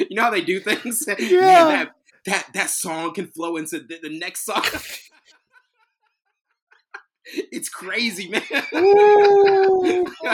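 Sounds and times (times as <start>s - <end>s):
speech: 0.0s - 5.1s, 7.3s - 10.3s
dogs howling: 1.2s - 1.8s, 8.8s - 10.2s
laughter: 8.3s - 10.3s.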